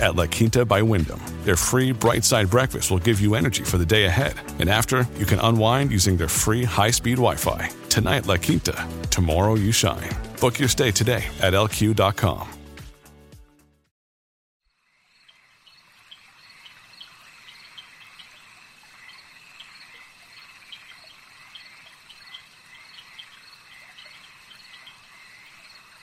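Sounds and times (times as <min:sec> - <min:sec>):
speech: 0:00.0 - 0:12.6
swamp insects buzzing: 0:14.8 - 0:26.0
bird calls in a swamp: 0:15.2 - 0:26.0.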